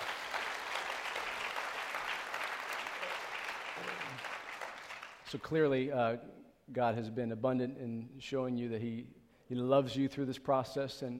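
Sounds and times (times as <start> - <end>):
audience clapping: 0.0 - 5.3
speech: 5.3 - 11.1.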